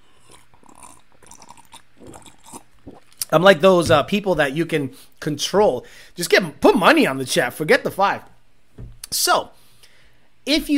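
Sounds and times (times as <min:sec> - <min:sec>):
wet slurping of a drink: 0:00.0 - 0:03.3
noisy sucking and gulping: 0:00.0 - 0:04.1
speech: 0:03.3 - 0:09.6, 0:10.4 - 0:10.7.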